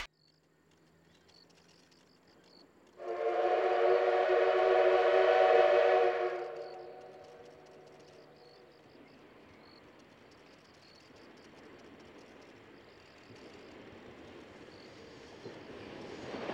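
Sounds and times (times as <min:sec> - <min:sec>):
steam locomotive loud chord-like whistle: 0:03.0 - 0:07.8.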